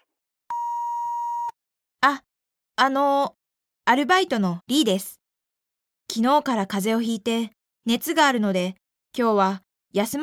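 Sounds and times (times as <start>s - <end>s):
answering machine electronic beep: 0.5s - 1.5s
speech: 2.0s - 5.2s, 6.1s - 10.2s.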